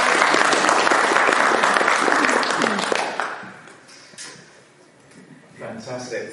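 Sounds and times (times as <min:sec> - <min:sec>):
audience applause: 0:00.0 - 0:03.7.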